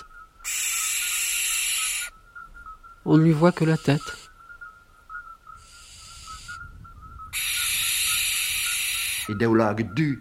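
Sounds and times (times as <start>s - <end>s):
owl letting out a harsh rasping screech: 0.0s - 2.2s, 3.3s - 4.4s, 5.6s - 6.7s, 7.3s - 9.5s
speech: 3.0s - 4.2s, 9.3s - 10.1s.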